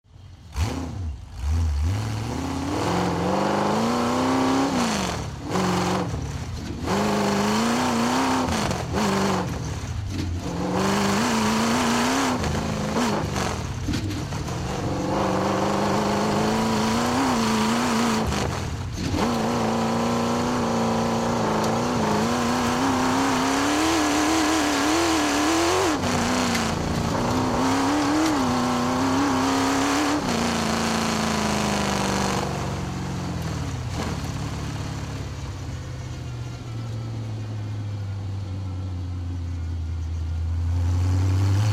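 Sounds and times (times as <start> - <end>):
Chevy V8 hot rod engine accelerating and slowing down: 0.2 - 41.7.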